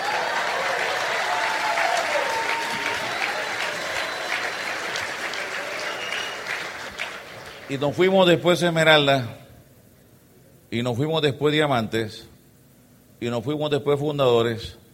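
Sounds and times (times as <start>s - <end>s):
audience applause: 0.0s - 7.8s
speech: 7.7s - 9.4s, 10.7s - 12.3s, 13.2s - 14.8s.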